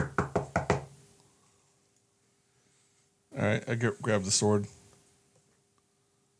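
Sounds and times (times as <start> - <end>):
knocking on a door: 0.0 - 1.0
speech: 3.5 - 4.8.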